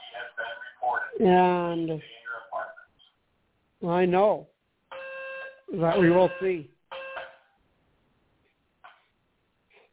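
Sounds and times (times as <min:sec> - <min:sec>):
speech: 0:01.2 - 0:02.2, 0:03.8 - 0:04.5, 0:05.7 - 0:06.8
electronic alarm tone being tested: 0:04.9 - 0:07.4.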